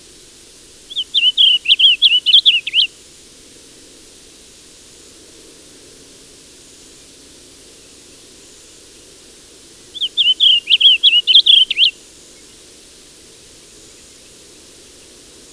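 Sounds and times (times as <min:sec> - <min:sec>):
blue grosbeak song: 0:00.8 - 0:03.0, 0:08.9 - 0:15.5.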